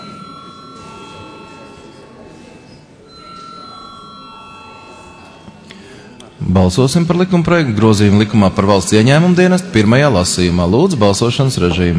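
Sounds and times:
parliament chamber electric bell ringing to call members to a vote: 0.0 - 6.8
murmur of voices: 0.0 - 11.9
speech: 6.4 - 11.9.

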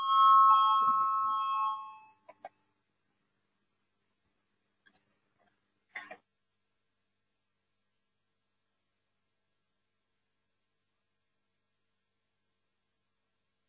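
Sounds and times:
electronic voting bell ringing in a parliament: 0.0 - 2.2.

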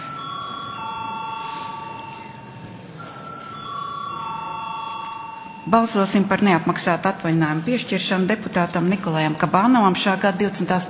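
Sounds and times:
electric bell ringing to call a vote in parliament: 0.0 - 6.4
speech: 5.7 - 10.8.

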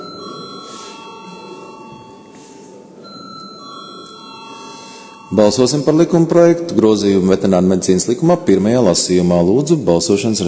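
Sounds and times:
electric bell ringing in a parliamentary chamber to call a vote: 0.0 - 6.3
speech: 5.3 - 10.4.

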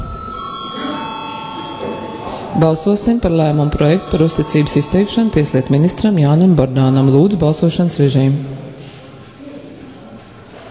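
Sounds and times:
electric bell ringing to call members to a vote in a parliamentary session: 0.0 - 8.0
speech: 2.6 - 8.6.

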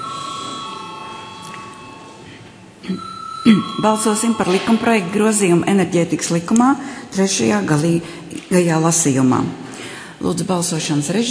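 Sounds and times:
parliamentary voting call bell ringing: 0.0 - 2.3, 3.0 - 5.4
speech: 2.9 - 11.3.

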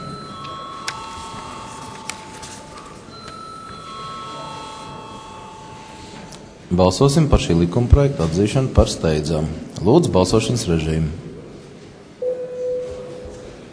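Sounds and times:
bell rung in a parliament chamber before a vote: 0.0 - 6.0
speech: 6.7 - 11.2.

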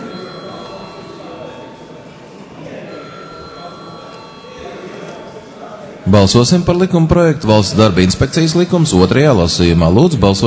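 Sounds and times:
electric bell ringing in a parliamentary chamber to call a vote: 0.0 - 5.6
speech: 6.1 - 10.4.

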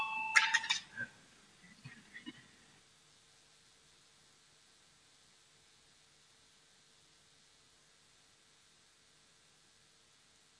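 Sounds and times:
short electronic bell ringing in a parliament chamber to call a vote: 0.0 - 0.8.

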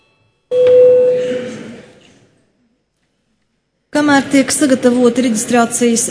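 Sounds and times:
bright electronic bell tone in a parliament chamber: 0.0 - 1.5
hum of a parliament chamber: 0.0 - 6.0
speech: 4.1 - 6.0.

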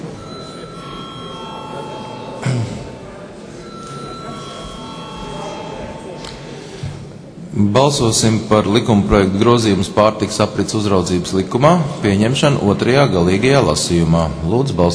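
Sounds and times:
parliament voting bell ringing before a vote: 0.0 - 3.0, 3.6 - 6.3
low murmur of deputies in parliament: 0.0 - 14.9
speech: 7.6 - 14.9.

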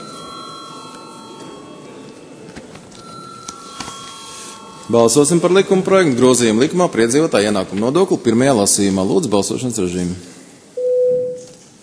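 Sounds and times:
electric parliamentary voting call bell buzzing: 0.0 - 6.7
room noise: 0.0 - 11.8
speech: 4.9 - 10.4.

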